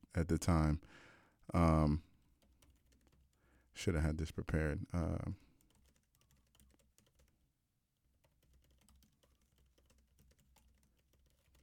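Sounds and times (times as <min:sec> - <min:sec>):
speech: 0:00.2 - 0:02.1, 0:03.8 - 0:05.4
rapid typing on a computer keyboard: 0:02.3 - 0:03.4, 0:05.4 - 0:07.5, 0:08.1 - 0:11.6.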